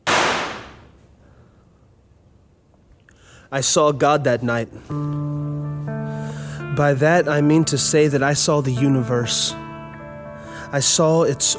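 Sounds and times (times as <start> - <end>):
single gunshot with tail: 0.0 - 1.0
speech: 3.5 - 5.4, 6.8 - 9.7, 10.7 - 11.5.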